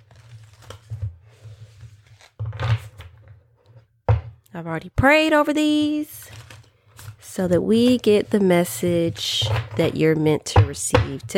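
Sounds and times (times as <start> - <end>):
deck of oracle cards shuffling: 0.0 - 3.3, 6.1 - 8.4
speech: 4.6 - 6.3, 7.4 - 11.3.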